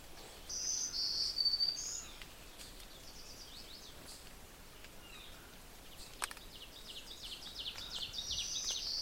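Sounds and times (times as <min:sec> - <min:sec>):
veery fluty downward-spiraling song phrases: 0:00.2 - 0:08.9.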